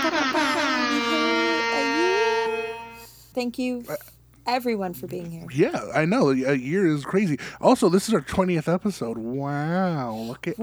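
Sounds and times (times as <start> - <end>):
laughter: 0.0 - 3.1, 5.5 - 10.6
loud blaring air horn blast: 0.0 - 3.3
speech: 3.4 - 10.6.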